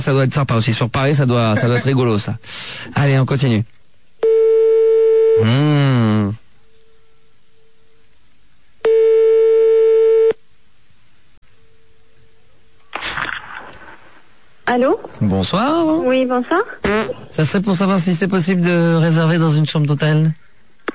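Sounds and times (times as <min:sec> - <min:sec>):
speech: 0:00.0 - 0:03.8, 0:05.4 - 0:06.4, 0:14.7 - 0:20.5
telephone line ringing tone while calling a small one-star hotel in Paris: 0:04.2 - 0:05.4, 0:08.8 - 0:10.4.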